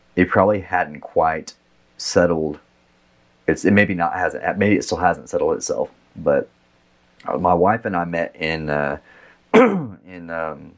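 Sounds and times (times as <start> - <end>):
speech: 0.2 - 2.7, 3.5 - 6.6, 7.2 - 10.7
sharp cough: 9.5 - 10.0.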